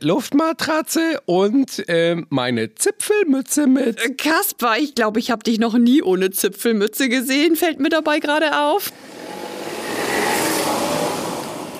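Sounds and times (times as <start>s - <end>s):
speech: 0.0s - 9.4s
car passing by through emergency lane: 8.9s - 11.7s
steady broadband road roar: 8.9s - 11.7s.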